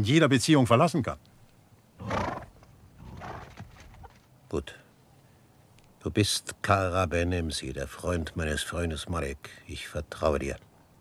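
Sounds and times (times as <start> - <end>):
speech: 0.0 - 1.4, 4.5 - 4.8, 6.0 - 10.7
stallion neighing: 2.0 - 4.2.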